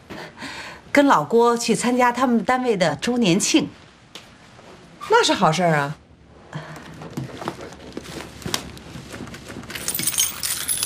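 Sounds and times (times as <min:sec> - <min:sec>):
speech: 0:01.0 - 0:03.8, 0:05.1 - 0:06.6
bunch of house keys jingling and clinking: 0:09.7 - 0:10.8.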